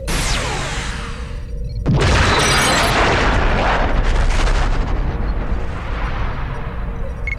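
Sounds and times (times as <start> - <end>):
disruptor fire from an attacking ship in a sci-fi strategy video game: 0.0 - 7.0
rumbling explosions of a space station being destroyed in a video game: 0.0 - 7.3.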